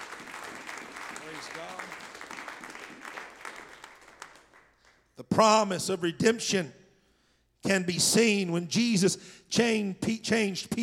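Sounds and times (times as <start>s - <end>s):
crowd clapping: 0.0s - 5.0s
speech: 5.4s - 6.8s, 7.6s - 10.8s.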